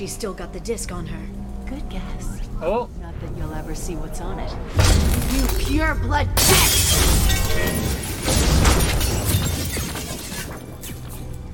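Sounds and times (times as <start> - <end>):
speech: 0.0 - 8.0
glass shattering in a video game fight: 4.8 - 5.8, 6.4 - 11.5.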